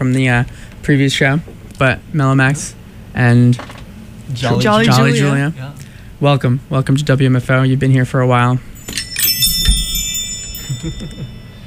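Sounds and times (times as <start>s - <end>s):
speech: 0.0s - 8.7s, 10.8s - 11.4s
metallic chimes ringing: 8.6s - 11.6s.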